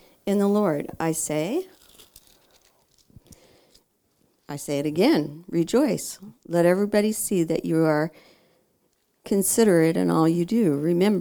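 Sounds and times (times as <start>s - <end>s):
speech: 0.3s - 1.8s, 4.5s - 8.3s, 9.2s - 11.1s
paper Bible pages flicking as they turn: 1.7s - 3.8s
paper Bible pages rustling and crinkling while handled: 1.7s - 4.3s.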